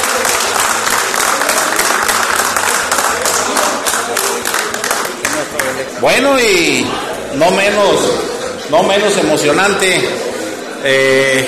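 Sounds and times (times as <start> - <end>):
large audience applauding a recognition presented to a teacher: 0.0 - 6.0
speech: 6.0 - 11.4.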